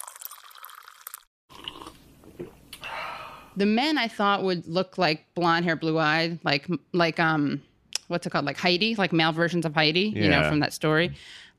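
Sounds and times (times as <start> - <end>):
wet slurping sips of tea: 0.1 - 2.0
speech: 3.6 - 11.5.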